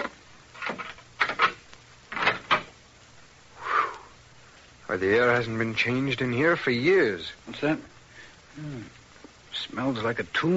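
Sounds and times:
door being worked open, scraping and creaking: 0.0s - 2.7s
speech: 5.0s - 7.9s, 8.6s - 9.0s, 9.6s - 10.5s.

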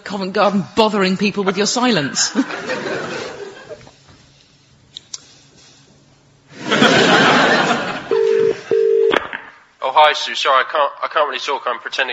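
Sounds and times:
speech: 0.1s - 3.1s, 10.1s - 12.1s
laughter: 2.0s - 4.0s, 6.5s - 8.7s
telephone ringing with short electronic buzzes: 8.1s - 9.2s.

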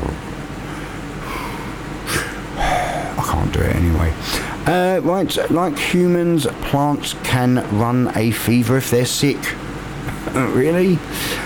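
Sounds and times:
voice imitating heavy rasping mask respirator breathing: 1.2s - 3.2s
speech: 3.6s - 9.6s, 10.3s - 11.3s.

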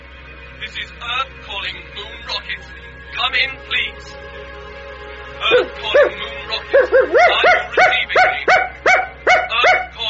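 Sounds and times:
speech: 0.6s - 8.6s
dog giving short tonal barks or yelps: 5.4s - 10.0s.

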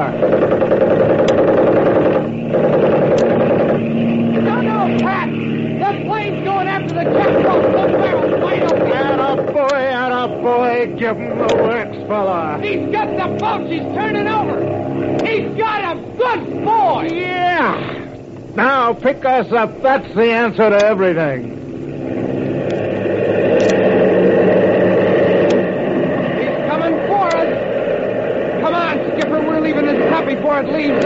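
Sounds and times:
loud steady motorboat engine droning: 0.0s - 31.0s
people's voices: 4.3s - 21.6s, 26.4s - 27.6s, 28.6s - 31.0s
speech: 11.0s - 17.8s, 18.6s - 21.6s.

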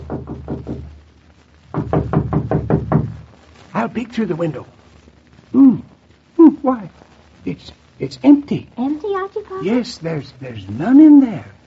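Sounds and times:
knocking on a wooden door: 0.0s - 0.9s, 1.7s - 3.2s
speech: 3.8s - 4.8s, 6.6s - 11.6s.

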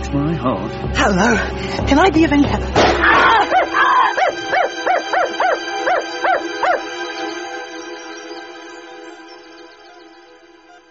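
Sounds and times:
speech: 0.1s - 3.6s
dog yelping and whimpering: 3.2s - 6.9s.

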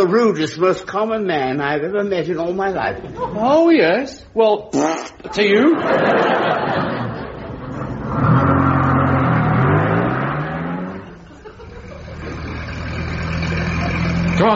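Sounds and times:
speech: 0.0s - 7.0s
laughter: 5.4s - 8.0s, 11.2s - 12.6s
car engine running and revving: 7.4s - 14.5s.

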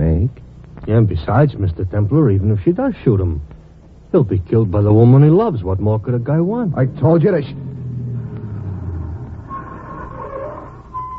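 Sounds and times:
steady whine over the motor: 0.0s - 11.1s
speech: 0.3s - 3.5s, 4.1s - 7.7s
car engine rumbling as the vehicle pulls up and slows: 4.8s - 11.1s.

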